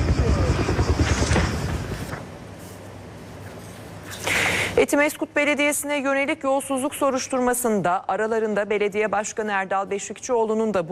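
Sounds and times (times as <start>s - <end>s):
dull helicopter engine drone: 0.0s - 2.2s
helicopter rotor thumping: 0.0s - 2.3s
speech: 4.8s - 10.9s.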